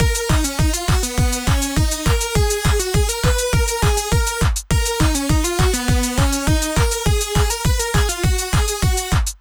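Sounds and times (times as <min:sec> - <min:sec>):
lead synth: 0:00.0 - 0:09.2
hi-hat: 0:00.0 - 0:09.3
kick drum: 0:00.0 - 0:09.3
clap sample: 0:03.8 - 0:09.3.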